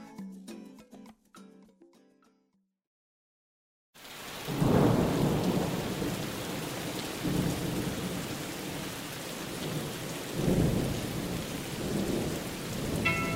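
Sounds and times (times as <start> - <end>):
heavy rain: 4.0 - 13.3
deep rolls of thunder: 4.4 - 13.3.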